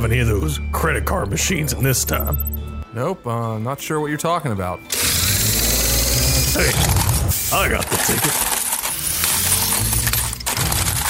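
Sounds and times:
speech: 0.0s - 5.1s, 6.6s - 8.5s
many coins spilling and jingling together: 4.9s - 11.0s.

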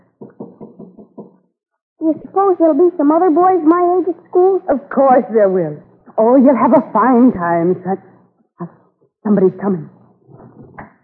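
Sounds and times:
knocking on a wooden door: 0.2s - 1.3s
speech: 2.0s - 10.0s.

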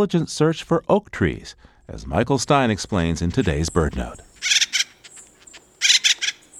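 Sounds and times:
speech: 0.0s - 4.6s
acorn woodpecker calling from a dead oak tree: 3.1s - 6.5s.

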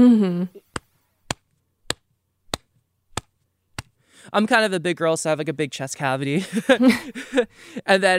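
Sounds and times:
speech: 0.0s - 0.6s, 4.3s - 8.1s
sharp bright snaps with low thuds: 0.6s - 4.0s
laughter: 6.4s - 7.5s.

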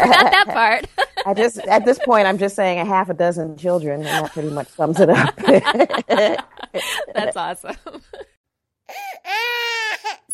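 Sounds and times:
laughter: 0.0s - 2.7s, 4.0s - 8.4s
speech: 0.0s - 8.3s
baby crying: 8.9s - 10.3s.

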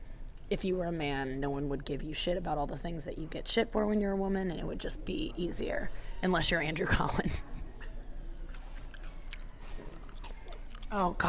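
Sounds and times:
speech: 0.5s - 7.5s, 10.9s - 11.2s
wet chewing of potato salad into microphone: 8.4s - 11.2s.

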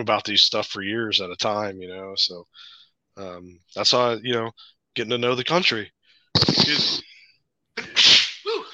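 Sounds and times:
speech: 0.0s - 7.1s
person sneezing: 6.4s - 7.1s, 7.8s - 8.7s.

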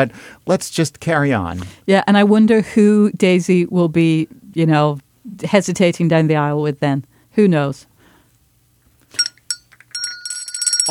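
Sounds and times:
speech: 0.0s - 7.9s
small servant's summoning bell ringing: 9.1s - 10.8s.

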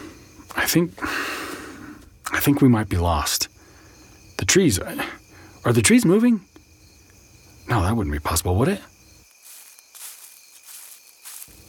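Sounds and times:
steady high drone of insects: 0.0s - 11.6s
speech: 0.7s - 1.3s, 2.4s - 3.5s, 4.4s - 6.5s, 7.7s - 8.9s
footsteps crunching through dry leaves and brush in woods: 9.2s - 11.6s.

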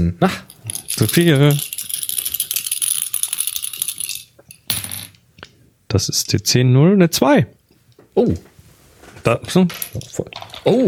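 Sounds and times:
speech: 0.0s - 1.7s, 5.9s - 7.6s, 8.2s - 8.5s, 9.2s - 10.8s
dice clattering and rattling across a hard surface: 0.5s - 5.2s.

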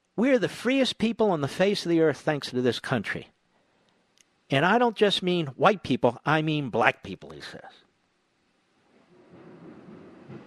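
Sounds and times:
speech: 0.2s - 3.4s, 4.5s - 7.8s
thunder rumbling during a thunderstorm: 9.1s - 10.4s.

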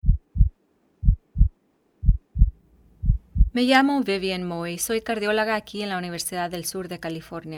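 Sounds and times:
deep low heartbeat thumping: 0.0s - 3.6s
speech: 3.6s - 7.5s.

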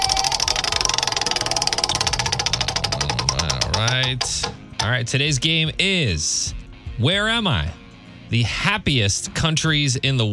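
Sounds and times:
low hum: 0.0s - 5.2s
prize wheel ticking as it is spun in a game show: 0.0s - 5.2s
speech: 3.8s - 10.3s.

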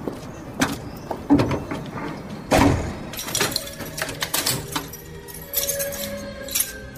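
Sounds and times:
house door opening and closing: 0.6s - 5.1s
metal gate clanking and rattling shut: 0.7s - 6.9s
light jingling and clicks: 3.1s - 6.9s.

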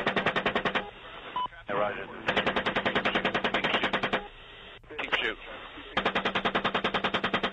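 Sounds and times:
rapid machine-gun fire from a military helicopter attack: 0.0s - 0.9s, 2.2s - 4.3s, 5.9s - 7.5s
radio voices: 0.0s - 6.2s
speech: 1.8s - 2.3s.

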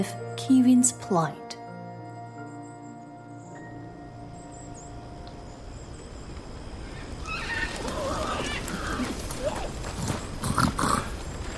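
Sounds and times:
speech: 0.0s - 1.5s
hooves of three horses carrying riders clip-clopping: 6.3s - 11.5s
horse whinnying: 7.0s - 9.8s.

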